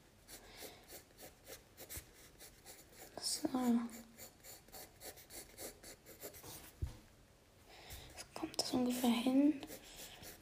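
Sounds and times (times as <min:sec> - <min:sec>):
pen or pencil scratching on paper while drawing eyes: 0:00.2 - 0:06.7, 0:08.1 - 0:10.4
speech: 0:03.6 - 0:04.0.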